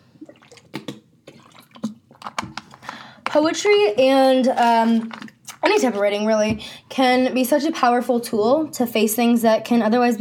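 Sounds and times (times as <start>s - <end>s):
person sipping and gulping water: 0.0s - 3.2s
speech: 3.4s - 10.1s.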